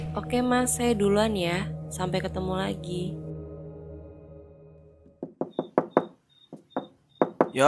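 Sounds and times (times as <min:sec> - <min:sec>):
speech: 0:00.2 - 0:03.2
knocking on a door: 0:05.2 - 0:07.6.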